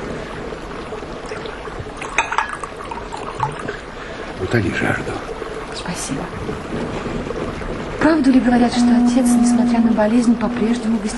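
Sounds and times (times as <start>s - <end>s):
water pouring into a cup: 1.1s - 5.6s
speech: 4.5s - 11.1s.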